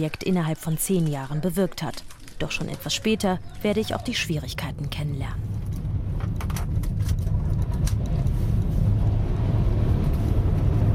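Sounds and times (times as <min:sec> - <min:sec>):
speech: 0:00.0 - 0:05.5
car engine rumble driving toward a cocoa plantation near a village: 0:04.6 - 0:10.9.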